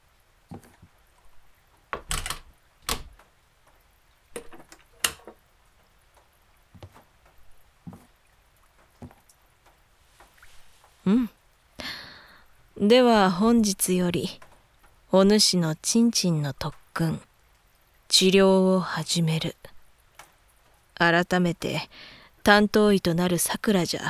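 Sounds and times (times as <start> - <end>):
speech: 0.5 - 0.8, 11.1 - 11.3, 12.8 - 14.4, 15.1 - 17.3, 18.1 - 19.7, 21.0 - 24.0
door being shut: 2.0 - 3.2, 4.4 - 5.4.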